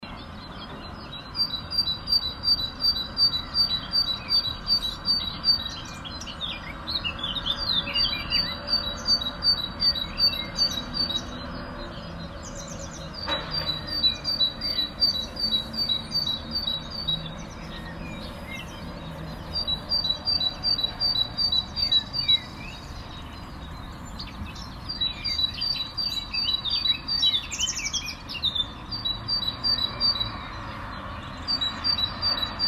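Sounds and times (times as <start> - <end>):
birds communicating: 0.0 - 32.6.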